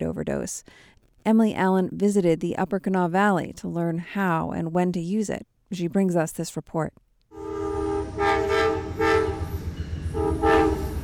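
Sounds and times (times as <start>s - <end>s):
speech: 0.0s - 7.0s
train engine and wheels rumbling past: 7.4s - 11.0s.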